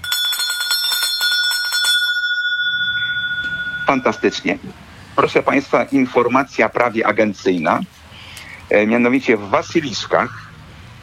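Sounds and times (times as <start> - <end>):
small bell jingling: 0.0 - 4.6
speech: 3.9 - 8.0, 8.7 - 10.4.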